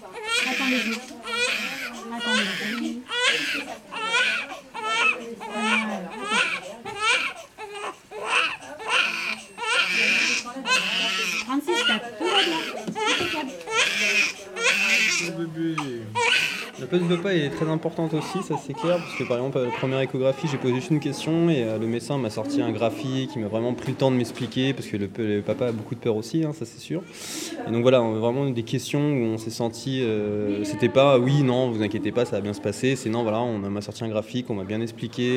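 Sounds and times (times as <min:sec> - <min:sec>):
newborn baby crying: 0:00.1 - 0:20.9
newborn baby gasping breaths: 0:04.4 - 0:09.5, 0:12.4 - 0:19.2
speech: 0:16.9 - 0:35.3.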